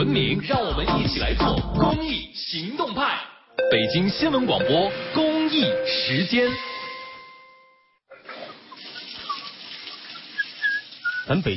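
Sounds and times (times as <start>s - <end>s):
speech: 0.1s - 6.7s, 11.3s - 11.5s
electronic tone: 3.6s - 7.8s
water gushing from an open tap: 8.5s - 11.5s.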